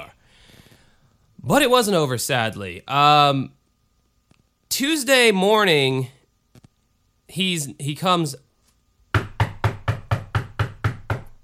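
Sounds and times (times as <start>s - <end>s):
speech: 1.5s - 3.6s, 4.7s - 6.2s, 7.3s - 8.4s
firm knocks on a house door: 9.2s - 11.4s.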